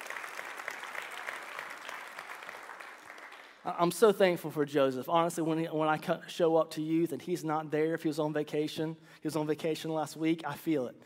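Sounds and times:
room full of people clapping steadily: 0.0 - 3.6
speech: 3.6 - 11.0.

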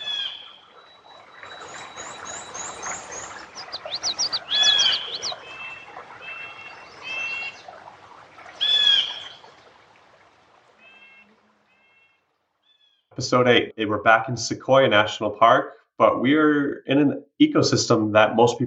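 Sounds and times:
blue jay calling: 0.0 - 0.6, 1.5 - 7.6, 8.6 - 9.4
birds chirping and trilling: 0.0 - 9.8, 10.8 - 13.2
speech: 13.2 - 18.6.

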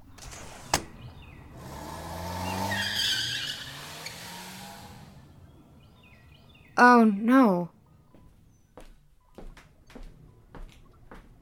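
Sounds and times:
car driving past with engine droning: 0.0 - 6.8
car tires screeching: 0.2 - 6.8
speech: 6.8 - 7.8.

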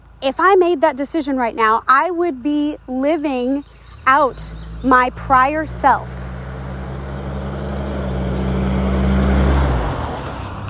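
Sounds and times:
speech: 0.2 - 6.3
loud mail truck rumbling past: 2.8 - 10.6.

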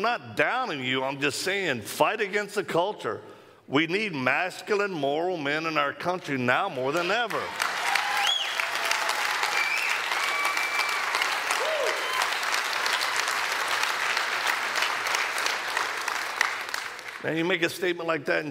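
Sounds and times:
speech: 0.0 - 7.7, 17.2 - 18.4
church audience applauding: 7.0 - 17.4
cheers and whistles: 7.6 - 13.4.

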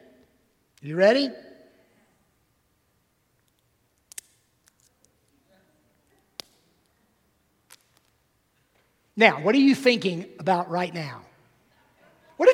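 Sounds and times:
speech: 0.8 - 1.5, 9.2 - 11.3
wooden pencil snapping in half: 3.4 - 5.1, 6.4 - 6.9, 7.7 - 8.2.

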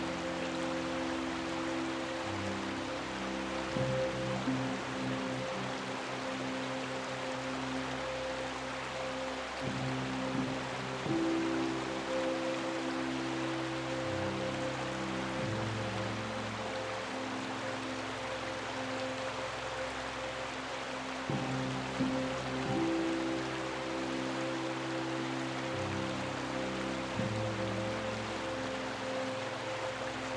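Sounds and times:
constant rush of flowing stream water: 0.0 - 30.3
soft calming piano lullaby of low sustained notes: 0.0 - 30.3.

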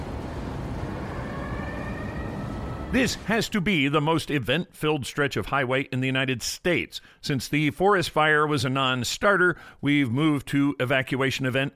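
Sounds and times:
emergency siren wailing: 0.0 - 3.5
road noise rumble while driving on a highway: 0.0 - 3.9
speech: 2.9 - 11.7.

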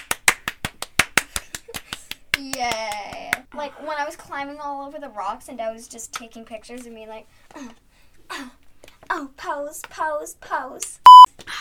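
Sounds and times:
hands clapping: 0.0 - 3.4
speech: 2.6 - 2.8, 3.5 - 7.8, 8.4 - 8.6, 9.2 - 11.0.

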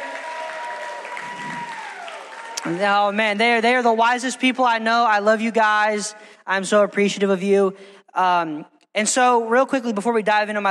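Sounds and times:
crowd clapping: 0.0 - 3.2
speech: 2.6 - 10.6.

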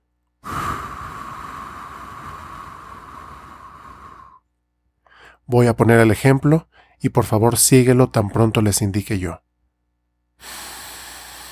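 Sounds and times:
faint breath: 0.4 - 4.4, 5.0 - 5.5, 6.7 - 7.0, 10.4 - 11.5
long steady exhale through the mouth in a breathing exercise: 0.4 - 4.4, 10.4 - 11.5
speech: 5.5 - 9.4, 10.4 - 10.6.

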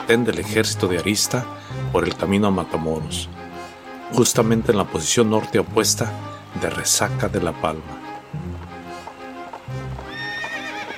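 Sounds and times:
horse hooves clip-clopping as the horse is ridden toward a hill: 0.0 - 10.9
speech: 0.1 - 3.4, 4.1 - 8.6
horse neighing: 10.0 - 10.9.

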